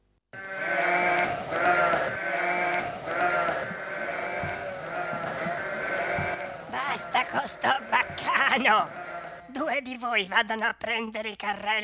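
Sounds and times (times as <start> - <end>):
several sheep bleating in overlapping chorus: 0.4 - 9.6
speech: 8.6 - 11.8.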